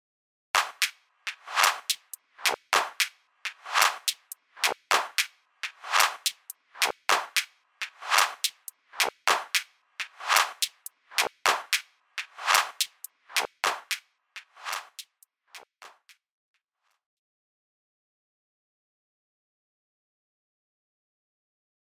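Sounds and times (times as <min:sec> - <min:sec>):
hand clap: 0:00.6 - 0:16.2.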